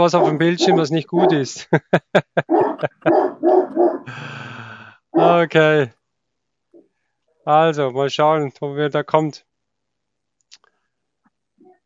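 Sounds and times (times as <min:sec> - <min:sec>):
dog barking: 0:00.0 - 0:01.6, 0:02.4 - 0:04.1, 0:05.2 - 0:05.5
laughter: 0:00.0 - 0:03.4
speech: 0:00.0 - 0:06.0, 0:07.4 - 0:09.5.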